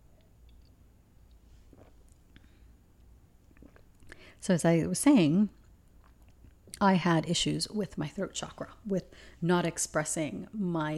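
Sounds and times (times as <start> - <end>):
low steady hum: 0.0 - 10.9
soft slurps and swallows with small wet clicks: 1.3 - 2.5, 3.5 - 4.2
person sipping a drink: 1.3 - 2.6, 3.4 - 4.3
speech: 4.4 - 5.6, 6.8 - 10.9.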